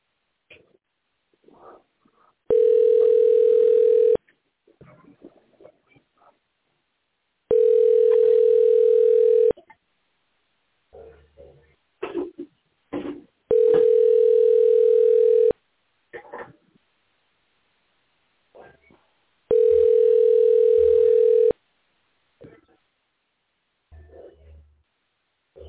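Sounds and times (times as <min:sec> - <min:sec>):
outgoing phone call ringing tones: 0:02.5 - 0:04.2, 0:07.5 - 0:09.6, 0:13.5 - 0:15.6, 0:19.5 - 0:21.6.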